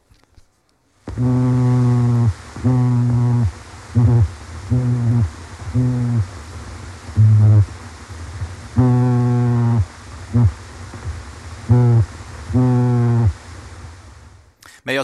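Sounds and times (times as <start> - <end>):
faint background hiss: 0.0 - 15.0
sculpin buzzy harmonic grunts underwater: 1.1 - 6.4, 7.0 - 7.8, 8.4 - 13.4.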